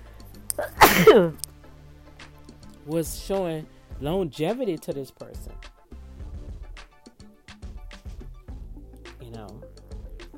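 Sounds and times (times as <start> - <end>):
person sneezing: 0.6 - 1.4
speech: 0.6 - 1.4, 2.9 - 5.7.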